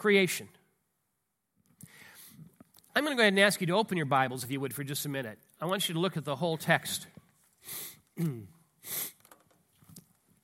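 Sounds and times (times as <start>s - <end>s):
speech: 0.0s - 0.6s, 3.0s - 9.1s
nasal sniffles from a head cold: 8.8s - 9.2s.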